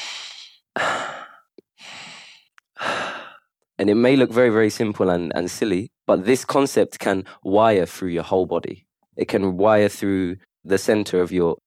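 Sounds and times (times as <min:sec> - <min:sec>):
deep breaths during a breathing exercise: 0:00.0 - 0:03.5
speech: 0:03.8 - 0:11.6.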